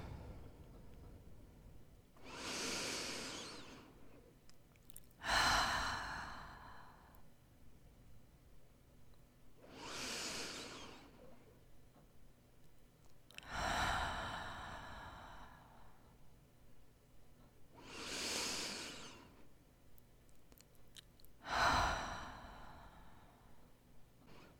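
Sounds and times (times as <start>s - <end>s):
slow deep breathing: 0.0s - 4.3s, 5.2s - 7.3s, 9.6s - 11.4s, 13.4s - 16.2s, 17.8s - 19.4s, 21.4s - 23.7s.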